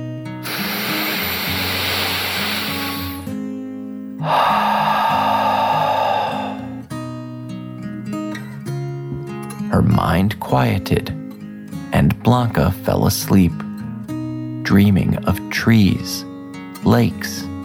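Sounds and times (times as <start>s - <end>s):
deep breath drawn in and pushed out: 0.5s - 3.3s, 4.2s - 6.9s
speech: 9.7s - 11.2s, 12.0s - 13.7s, 14.7s - 17.5s.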